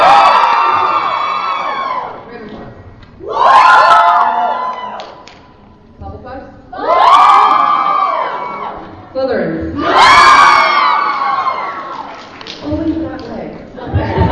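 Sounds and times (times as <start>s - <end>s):
audience screaming and cheering: 0.0s - 2.3s, 3.2s - 5.4s, 6.7s - 9.1s, 9.7s - 12.4s
laughter: 13.8s - 14.3s.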